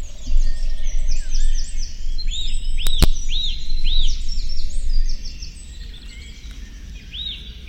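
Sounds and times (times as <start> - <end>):
Eurasian nuthatch Sitta europaea repeating piping arched whistles: 0.0 - 7.6
birds twittering: 0.0 - 7.6
low rumbling noise: 0.0 - 7.6
sharp clicks: 2.8 - 3.2.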